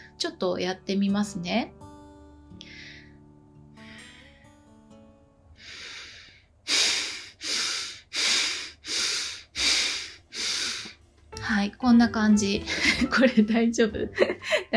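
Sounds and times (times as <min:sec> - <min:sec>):
speech: 0:00.2 - 0:01.8, 0:11.5 - 0:14.7
rapid forceful Bhastrika breathing through the nose: 0:05.6 - 0:11.0.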